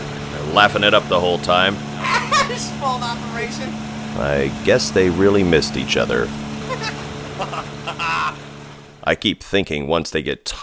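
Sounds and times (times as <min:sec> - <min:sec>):
outboard motorboat engine droning: 0:00.0 - 0:09.1
speech: 0:00.5 - 0:08.4, 0:09.0 - 0:10.6
voices or shouts: 0:01.8 - 0:03.3, 0:06.6 - 0:08.7
laughter: 0:02.0 - 0:02.7, 0:06.6 - 0:08.5.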